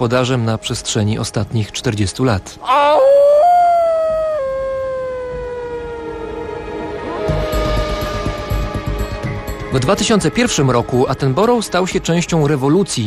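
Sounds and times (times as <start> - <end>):
speech: 0.0 - 3.2, 9.8 - 13.0
wolves howling: 2.6 - 9.4.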